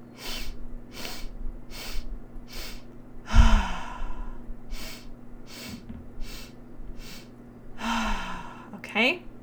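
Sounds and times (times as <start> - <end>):
faint steady low hum: 0.0 - 9.4
short sharp sniffs in through the nose during guided breath work: 0.2 - 2.9, 4.7 - 7.3
long loud exhale out of the mouth during guided breath work: 0.2 - 8.7.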